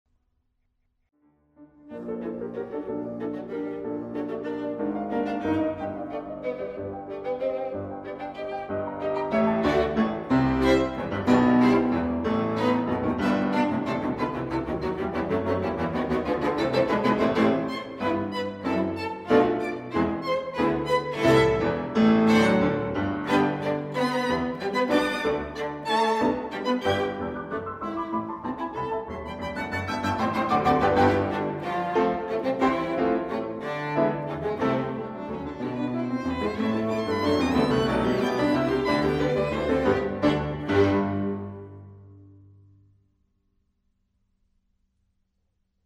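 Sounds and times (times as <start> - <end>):
piano quintet playing: 1.6 - 42.4.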